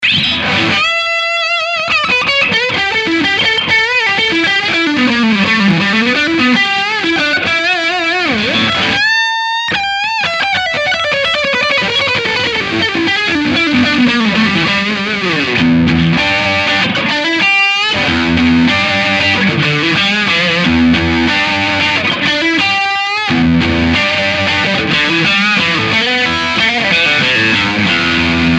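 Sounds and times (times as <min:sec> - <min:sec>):
electric guitar on middle pickup: 0:00.0 - 0:28.5.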